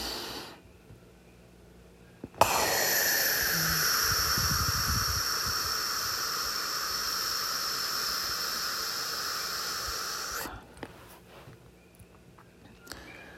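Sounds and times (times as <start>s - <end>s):
single long loud breath close to the microphone: 0.0s - 0.6s, 2.4s - 10.8s.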